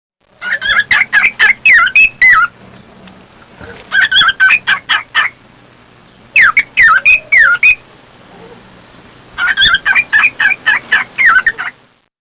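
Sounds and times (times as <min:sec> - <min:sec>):
cockatiel calls: 0:00.4 - 0:02.6, 0:03.8 - 0:05.4, 0:06.4 - 0:07.8, 0:09.4 - 0:11.8.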